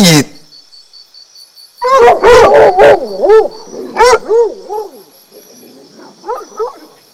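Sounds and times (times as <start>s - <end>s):
fox yelping howls: 1.8s - 7.0s.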